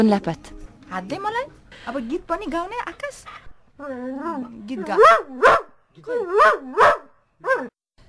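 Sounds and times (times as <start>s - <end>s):
speech: 0.0s - 7.7s
dog singing on command with yodel-like howls: 3.8s - 7.7s.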